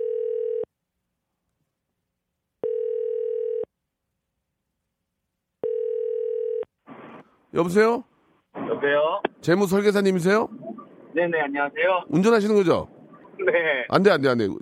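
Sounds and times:
telephone ringback tone: 0.0s - 0.7s, 2.6s - 3.7s, 5.6s - 6.7s
speech: 7.5s - 8.1s, 8.8s - 10.5s, 11.2s - 12.9s, 13.5s - 14.6s.

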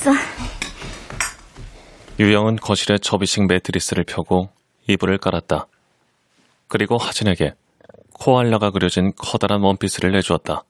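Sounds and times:
speech: 0.0s - 0.3s, 2.2s - 5.7s, 6.7s - 7.6s, 8.2s - 10.6s
low steady noise: 0.0s - 10.6s
teacups and plates clinking while being washed: 0.4s - 1.7s.

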